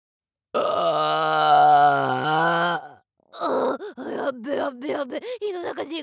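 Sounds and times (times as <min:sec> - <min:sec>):
long deep burp: 0:00.5 - 0:03.8
speech: 0:04.4 - 0:06.0.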